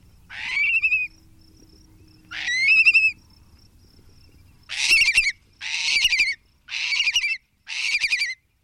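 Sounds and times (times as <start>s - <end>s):
long-billed curlew calling: 0.3s - 1.2s, 2.2s - 3.2s, 4.7s - 8.4s.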